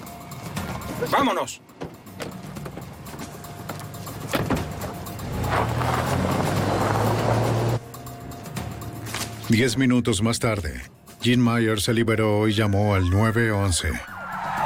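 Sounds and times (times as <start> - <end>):
speech: 1.0 - 1.8, 9.5 - 14.1
van engine revving as the van pulls away: 4.2 - 7.8.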